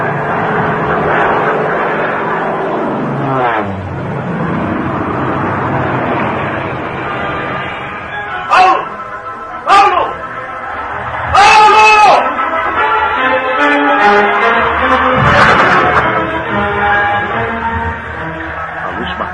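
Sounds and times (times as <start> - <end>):
airplane engine droning during forced landing in darkness: 0.0 - 19.3.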